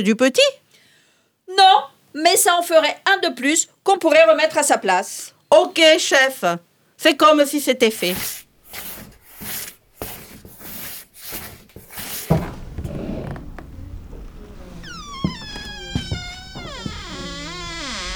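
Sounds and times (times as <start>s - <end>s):
speech: 0.0s - 0.6s, 1.5s - 8.9s
door scraping as it is worked open and shut: 8.0s - 18.1s.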